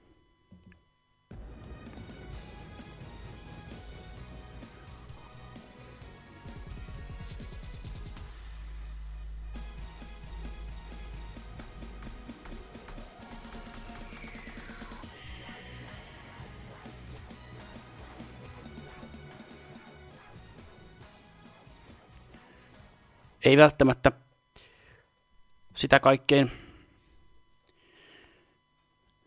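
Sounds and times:
machine-generated dubstep remix with sub-bass drops and glitchy synths: 1.6 - 23.2
speech: 23.4 - 24.2, 25.8 - 26.6.

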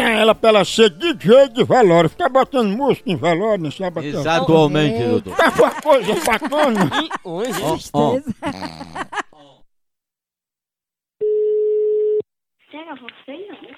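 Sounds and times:
speech: 0.2 - 9.3, 12.7 - 13.7
laughter: 1.6 - 9.7
electronic ring-back tone from an outgoing telephone call: 11.2 - 12.2.

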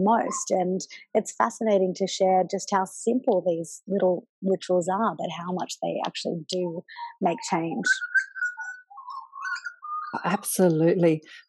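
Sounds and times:
speech: 0.0 - 8.3, 10.1 - 11.4
bird singing outside in a garden: 7.4 - 10.2.

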